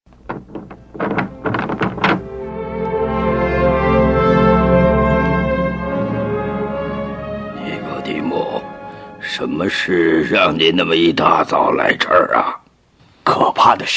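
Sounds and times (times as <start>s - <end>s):
wooden door latch and handle clunking and rattling: 0.1s - 2.4s
steady sustained tonal drone: 0.7s - 11.0s
speech: 9.6s - 12.6s, 13.3s - 13.9s.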